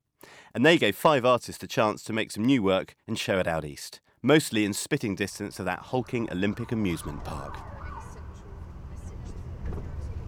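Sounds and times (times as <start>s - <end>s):
speech: 0.5s - 7.7s
bus engine idling outside an art magazine's headquarters: 6.0s - 10.2s.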